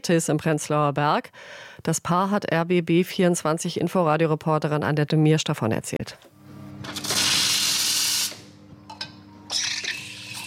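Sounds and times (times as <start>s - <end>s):
speech: 0.0s - 7.0s
low mechanical hum: 6.0s - 10.4s
steam hissing from a coffee machine being cleaned in a bookshop café in Berlin: 7.0s - 8.5s.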